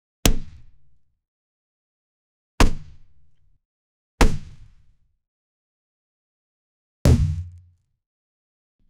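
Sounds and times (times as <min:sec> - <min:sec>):
loud stomp punch impact: 0:07.1 - 0:07.7.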